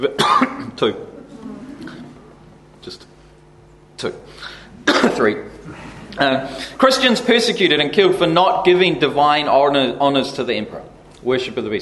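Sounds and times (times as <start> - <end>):
speech: 0.0 - 1.1, 2.8 - 3.1, 4.0 - 11.7
person coughing: 0.1 - 0.8, 4.8 - 5.9.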